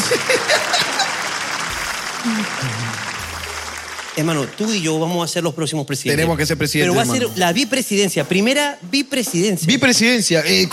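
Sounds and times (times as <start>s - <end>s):
faint laughter: 0.0s - 1.4s
audience applause: 0.0s - 5.5s
speech: 2.2s - 3.0s, 4.2s - 10.7s.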